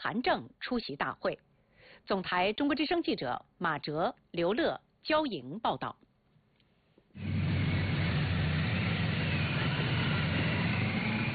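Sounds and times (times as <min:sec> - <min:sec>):
speech: 0:00.0 - 0:06.0
motorcade of ceremonial cars and escort motorcycles driving: 0:07.2 - 0:11.3.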